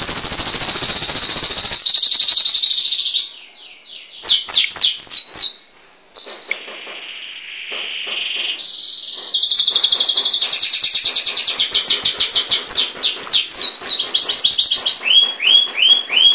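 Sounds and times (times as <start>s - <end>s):
bird singing: 0.0s - 16.3s.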